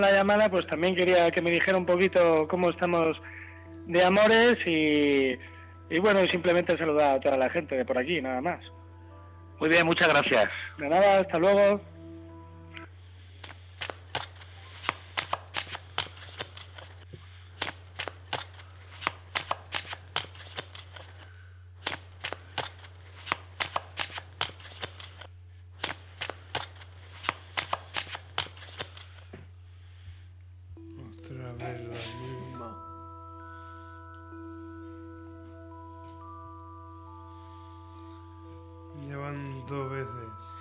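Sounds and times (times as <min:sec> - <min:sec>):
speech: 0:00.0 - 0:08.8, 0:09.6 - 0:11.9
playing cards shuffled by a fortune teller: 0:13.4 - 0:29.4, 0:31.8 - 0:32.8.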